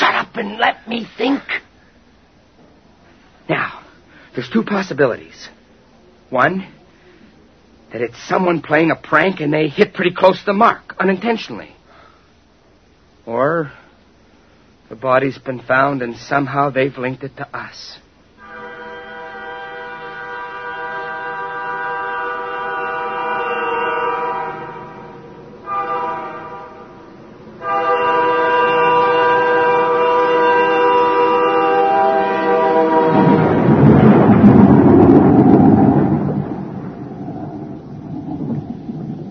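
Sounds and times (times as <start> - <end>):
speech: 0.4 - 1.6, 4.4 - 5.6, 6.3 - 6.8, 7.9 - 11.8, 13.3 - 13.8, 14.9 - 18.0
steady droning tone: 18.2 - 39.2
loud deep roll of thunder in a storm: 32.7 - 39.2.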